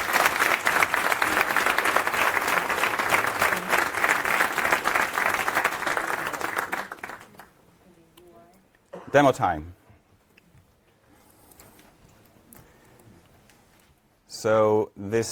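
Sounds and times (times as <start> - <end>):
crowd applauding: 0.0 - 7.6
speech: 9.1 - 9.8, 14.4 - 15.3.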